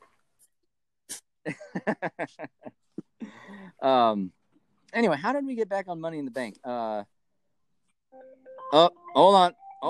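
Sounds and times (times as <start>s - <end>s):
speech: 1.4s - 2.6s, 3.8s - 4.4s, 5.0s - 7.1s, 8.7s - 9.8s
phone ringing for incoming call: 8.2s - 9.8s.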